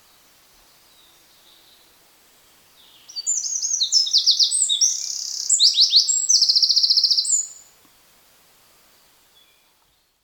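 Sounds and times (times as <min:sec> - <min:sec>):
Eurasian wren Troglodytes troglodytes singing: 0:03.1 - 0:07.6.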